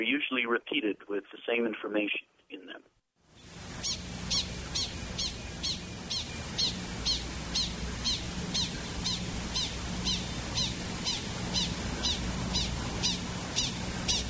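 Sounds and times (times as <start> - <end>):
speech: 0.0 - 2.9
faint low hum: 0.0 - 14.2
coyote call of rapid short high chirps: 3.8 - 14.2.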